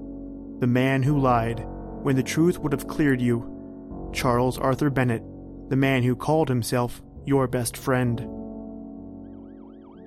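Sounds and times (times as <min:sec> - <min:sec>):
speech: 0:00.6 - 0:03.5, 0:04.1 - 0:08.5
ambulance siren wailing: 0:09.2 - 0:10.0.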